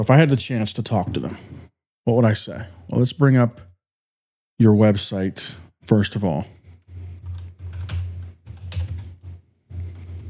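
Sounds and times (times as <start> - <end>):
speech: 0.0 - 3.7, 4.6 - 6.6
typing a search on a computer keyboard: 7.2 - 10.2.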